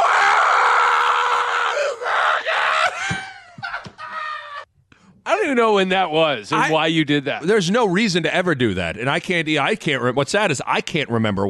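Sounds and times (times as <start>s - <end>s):
person screaming: 0.0s - 4.7s
speech: 5.6s - 11.4s.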